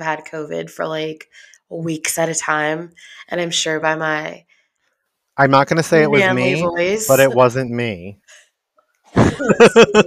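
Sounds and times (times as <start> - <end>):
speech: 0.0 - 4.5, 5.4 - 8.4, 9.2 - 10.0
laughter: 5.8 - 7.9, 9.2 - 10.0
person coughing: 9.2 - 10.0.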